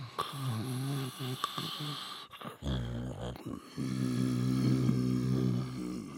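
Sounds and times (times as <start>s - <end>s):
mammoth snoring with low growling rasp: 0.0s - 6.1s.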